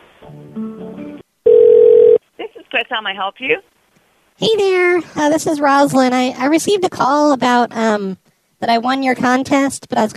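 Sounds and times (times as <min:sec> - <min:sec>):
telephone dialing tones: 0:01.5 - 0:02.2
speech: 0:02.9 - 0:03.7, 0:04.4 - 0:10.1.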